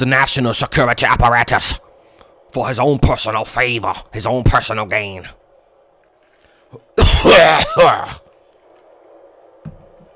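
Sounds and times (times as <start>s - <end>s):
speech: 0.0s - 1.9s, 2.5s - 5.4s, 6.7s - 8.2s
low hum: 0.0s - 10.1s
loud cough: 7.0s - 8.2s.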